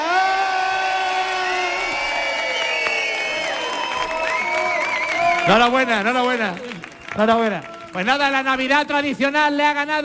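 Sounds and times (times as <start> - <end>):
crowd cheering and whooping: 0.0 - 7.9
steady applause: 0.9 - 9.4
speech: 5.5 - 10.0.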